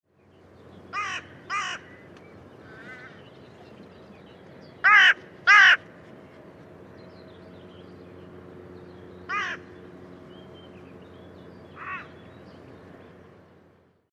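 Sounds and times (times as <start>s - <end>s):
carrion crow cawing: 0.9s - 3.2s, 4.8s - 5.8s, 9.3s - 9.7s, 11.8s - 12.2s.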